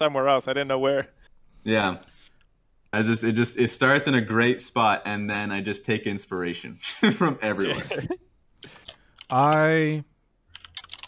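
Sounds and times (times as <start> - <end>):
speech: 0.0 - 2.1, 2.9 - 10.1
laughter: 6.8 - 8.2
computer keyboard typing: 8.6 - 9.8, 10.5 - 11.0.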